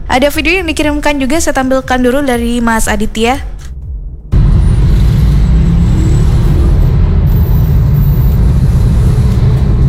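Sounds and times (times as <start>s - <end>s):
speech: 0.1s - 3.6s
heavy traffic jammed on a bridge in the Sulfat area: 4.1s - 9.8s.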